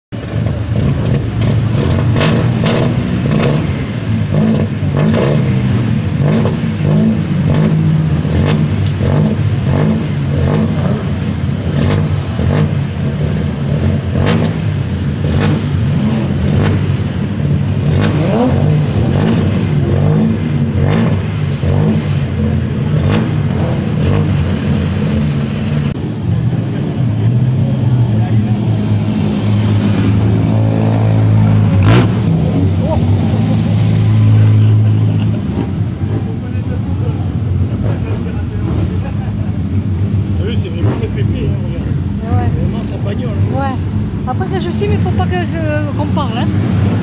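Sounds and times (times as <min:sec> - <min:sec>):
Bugatti engine backfiring: 0:00.1 - 0:47.0
laughter: 0:32.8 - 0:39.6.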